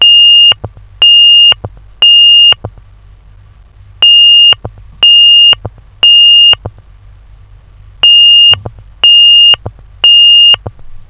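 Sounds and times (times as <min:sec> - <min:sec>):
tone: 0:00.0 - 0:02.7, 0:04.0 - 0:06.7, 0:08.0 - 0:10.7.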